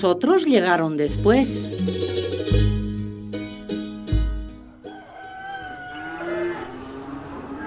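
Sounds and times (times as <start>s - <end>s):
speech: 0.0s - 2.6s
farmyard animal sounds: 4.7s - 7.6s
rooster crowing: 4.7s - 7.6s
cows mooing: 4.9s - 7.6s.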